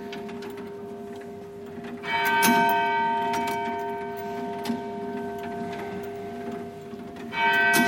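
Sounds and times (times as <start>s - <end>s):
clicking mechanism noises of mechanical clock: 0.0s - 7.8s
mechanical clock striking the hour on its bell: 2.0s - 7.8s.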